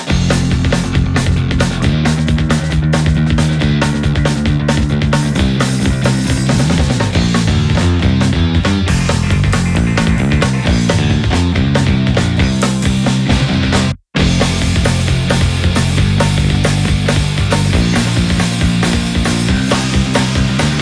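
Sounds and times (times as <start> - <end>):
Reverend Guitars Decision P Midnight Black electric guitar: 0.1 - 20.8.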